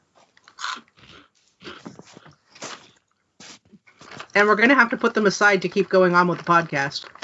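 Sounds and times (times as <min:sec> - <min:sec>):
crisp crunching of someone chewing snacks: 0:00.4 - 0:03.1
speech: 0:04.4 - 0:07.2.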